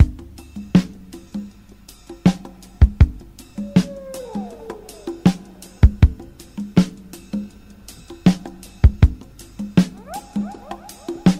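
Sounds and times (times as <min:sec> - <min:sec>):
jungle noises: 0:02.3 - 0:07.9, 0:09.6 - 0:11.3.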